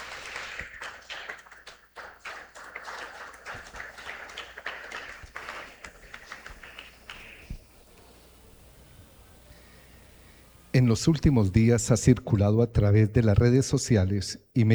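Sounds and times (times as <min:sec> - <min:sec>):
people clapping at a church service: 0:00.0 - 0:11.7
speech: 0:10.8 - 0:14.7.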